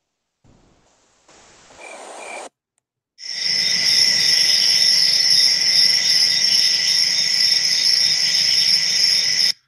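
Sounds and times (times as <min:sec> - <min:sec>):
dense chorus of crickets chirping: 0:01.3 - 0:02.5, 0:03.2 - 0:09.6.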